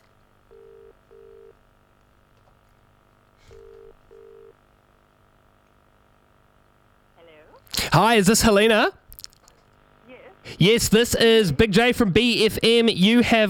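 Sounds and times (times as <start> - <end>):
phone line ringback tones during outgoing call: 0.5 - 1.6, 3.5 - 4.6
speech: 8.0 - 9.0, 10.6 - 13.4.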